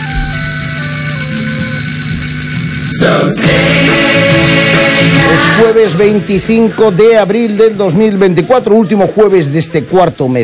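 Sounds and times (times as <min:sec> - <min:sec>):
bells ringing: 0:00.0 - 0:03.5
speech: 0:03.0 - 0:04.3, 0:05.3 - 0:10.4.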